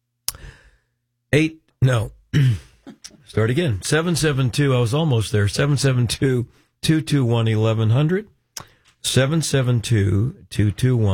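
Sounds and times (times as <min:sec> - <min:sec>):
speech: 0:01.3 - 0:11.1
raspy throat clearing: 0:02.4 - 0:03.3.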